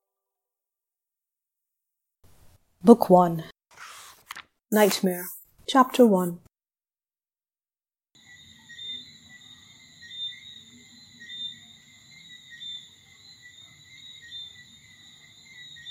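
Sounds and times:
speech: 2.8s - 3.6s, 4.7s - 6.4s
chorus of tree frogs trilling at night: 8.2s - 15.8s.

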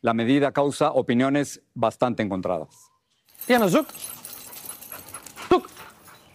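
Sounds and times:
speech: 0.0s - 4.2s
female pitbull panting: 3.4s - 6.3s.

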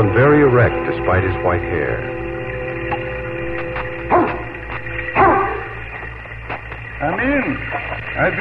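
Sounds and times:
speech: 0.0s - 2.3s, 7.0s - 8.3s
low steady hum: 0.0s - 8.3s
dog barking: 4.1s - 4.5s, 5.2s - 5.8s.

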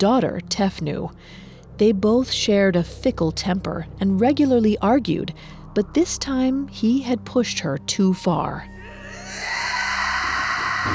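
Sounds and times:
speech: 0.0s - 9.5s
woman screaming in rage: 8.8s - 10.9s.

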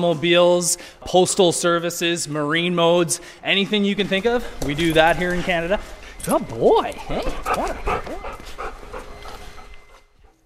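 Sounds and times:
speech: 0.0s - 8.3s
border detection dog panting: 2.7s - 10.4s.

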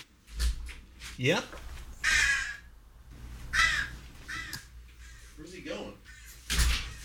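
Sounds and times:
speech: 1.2s - 1.7s
crow cawing in a doorway: 1.9s - 2.8s, 3.4s - 7.0s.

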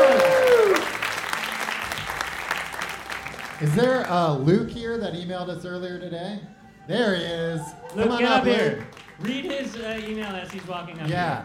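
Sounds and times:
audience applause at a live comedy show: 0.0s - 4.2s, 8.6s - 11.4s
speech: 3.6s - 11.4s.

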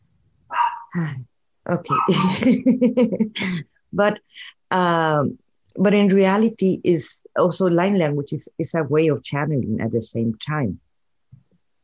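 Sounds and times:
dog barking: 0.5s - 1.0s, 1.9s - 2.4s
speech: 0.9s - 10.8s.

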